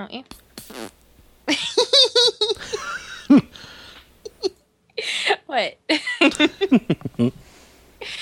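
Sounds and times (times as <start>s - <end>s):
speech: 0.0s - 0.9s, 5.6s - 7.4s
breathy hissing: 0.3s - 1.0s, 2.6s - 4.3s, 7.4s - 8.2s
person imitating a fart with vocal bursts: 0.5s - 1.0s
laughter: 1.5s - 3.6s.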